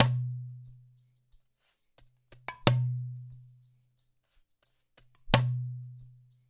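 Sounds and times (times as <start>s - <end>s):
percussion loop: 0.0s - 0.3s, 2.3s - 4.1s, 5.1s - 6.4s.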